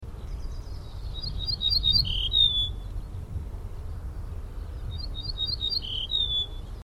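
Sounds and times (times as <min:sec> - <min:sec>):
ortolan calling: 0:00.2 - 0:03.2, 0:04.5 - 0:06.8.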